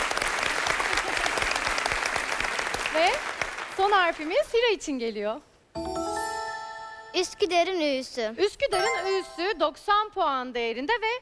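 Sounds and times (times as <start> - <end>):
studio audience at a televised quiz show applauding the contestants: 0.0 - 4.3
speech: 3.0 - 5.9, 7.2 - 11.2.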